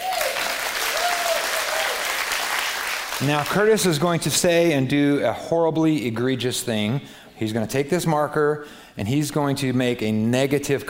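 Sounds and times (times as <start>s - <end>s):
audience applause for a man introduced on stage: 0.0s - 3.6s
speech: 3.2s - 10.8s.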